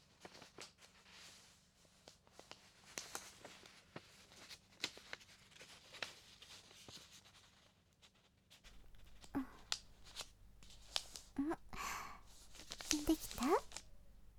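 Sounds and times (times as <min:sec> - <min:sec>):
paper rustling and crinkling as it is folded by hand: 0:00.0 - 0:07.7, 0:08.7 - 0:14.3
faint breaths: 0:08.7 - 0:14.3
quiet steady hum: 0:08.7 - 0:14.3.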